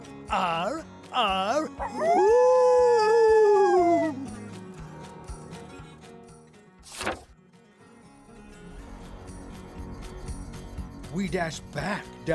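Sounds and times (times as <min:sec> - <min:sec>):
speech: 0:00.3 - 0:02.6, 0:11.2 - 0:12.3
pack of coyotes howling in chorus: 0:01.6 - 0:04.4.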